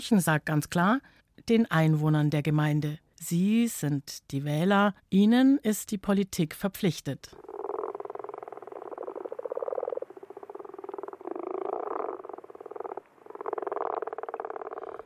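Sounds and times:
speech: 0.0s - 7.5s
toads trilling at night by puddles in an unpaved yard in Munich Germany: 7.4s - 15.0s.

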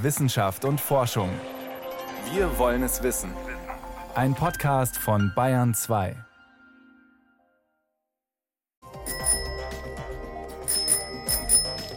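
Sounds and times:
speech: 0.0s - 1.6s, 2.2s - 3.6s, 4.2s - 6.3s
bicycle bell ringing: 9.0s - 11.9s.

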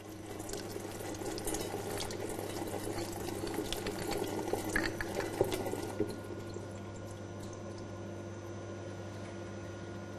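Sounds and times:
low mechanical hum: 0.0s - 10.1s
water running from a sampling tap for microbiological testing: 0.2s - 7.1s.

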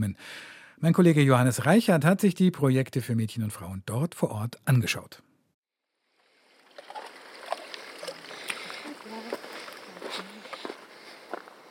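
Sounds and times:
speech: 0.0s - 5.3s
water splashed by hand onto a vegetable bed in a small field in Madagascar: 6.2s - 10.6s.

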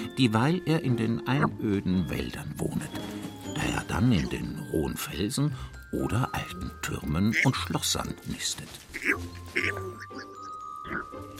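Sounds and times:
speech: 0.2s - 11.0s
northern bald ibis giving hoarse guttural greeting calls: 7.1s - 7.8s, 8.8s - 11.3s.

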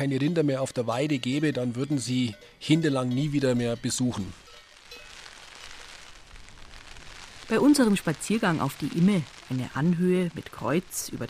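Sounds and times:
speech: 0.0s - 4.4s, 7.5s - 11.2s
rain drumming on an umbrella on a walk up a hill above Hindelang in the Allgäu: 4.1s - 11.2s.

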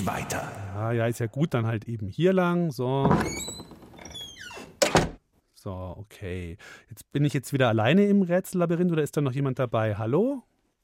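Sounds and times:
speech: 0.0s - 3.7s, 5.6s - 10.5s
door creaking with a high squeaky hinge: 3.0s - 5.2s.

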